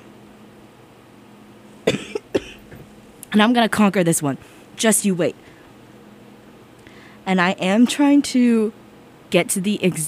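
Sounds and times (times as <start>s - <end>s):
person coughing: 1.9s - 2.8s
speech: 3.3s - 5.5s, 7.3s - 10.0s.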